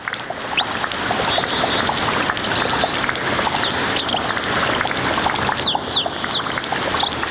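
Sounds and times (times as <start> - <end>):
water flowing and splashing at a spring: 0.0 - 7.2
high bird chirps: 0.2 - 4.4, 5.2 - 7.2.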